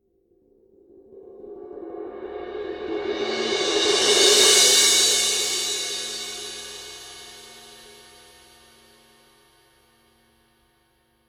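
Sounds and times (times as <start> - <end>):
Paiste 2002 20 medium crash cymbal roll: 2.6 - 9.5.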